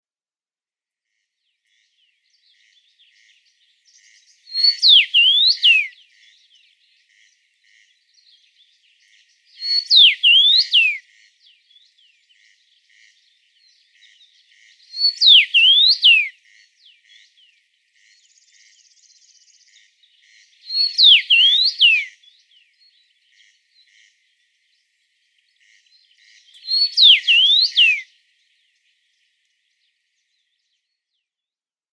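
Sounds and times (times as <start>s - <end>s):
common rosefinch whistling: 4.6s - 5.9s, 9.6s - 11.0s, 15.0s - 16.3s, 20.7s - 22.1s, 26.6s - 28.0s.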